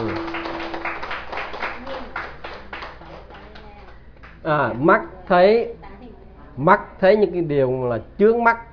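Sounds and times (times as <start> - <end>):
audience applauding: 0.0 - 4.4
speech: 4.4 - 5.8, 6.6 - 8.7.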